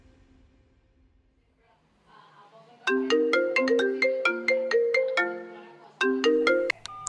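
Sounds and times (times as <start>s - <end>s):
phone ringtone of sharp electronic bursts and a melodic synthetic tune: 2.9s - 5.5s, 6.1s - 7.0s.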